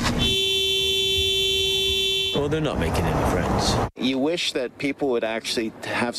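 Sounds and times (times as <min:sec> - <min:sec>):
car horn held down in one long steady loud blare in stalled rush hour traffic: 0:00.0 - 0:02.6
speech: 0:02.5 - 0:06.1.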